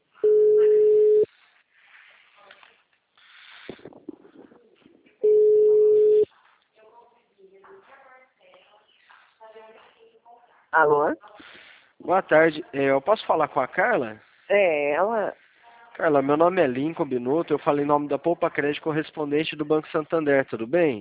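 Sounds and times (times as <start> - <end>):
ringback tone of an outgoing telephone call: 0.2 - 1.3, 5.2 - 6.2
speech: 10.8 - 11.3, 12.1 - 15.4, 16.0 - 20.9.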